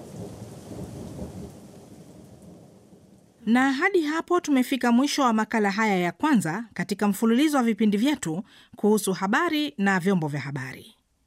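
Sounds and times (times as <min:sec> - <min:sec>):
thunder rolling as rain is about to fall: 0:00.0 - 0:03.5
speech: 0:03.4 - 0:11.0.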